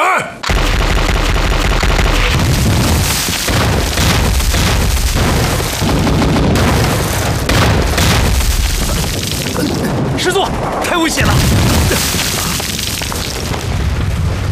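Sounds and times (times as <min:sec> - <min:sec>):
artillery bombardment shell explosions: 0:00.4 - 0:14.5.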